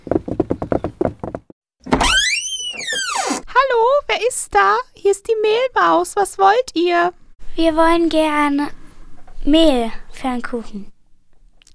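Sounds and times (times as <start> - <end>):
hollow knocking on the wooden door of a mill: 0.0 - 1.5
mill door creaking as it swings open: 1.9 - 3.5
speech: 4.2 - 8.8, 9.4 - 10.9.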